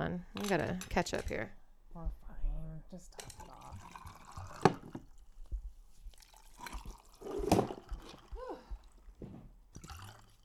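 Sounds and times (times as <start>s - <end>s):
speech: 0.1s - 2.2s, 2.9s - 3.4s
drink glugging and splashing from a bottle into a glass: 3.2s - 10.4s.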